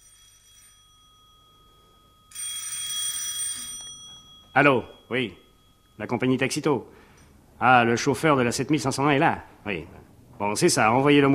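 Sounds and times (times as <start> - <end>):
telephone bell ringing: 0.0 - 7.1
speech: 4.6 - 5.4, 6.0 - 7.0, 7.6 - 11.3.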